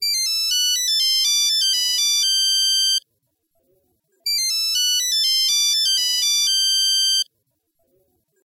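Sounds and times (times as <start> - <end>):
old Nokia mobile phone ringtone: 0.0 - 3.0, 4.3 - 7.3.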